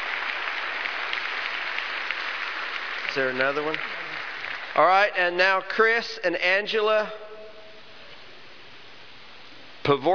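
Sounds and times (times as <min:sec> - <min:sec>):
audience applause: 0:00.0 - 0:05.1
speech: 0:03.1 - 0:04.0, 0:04.8 - 0:07.2, 0:09.8 - 0:10.1.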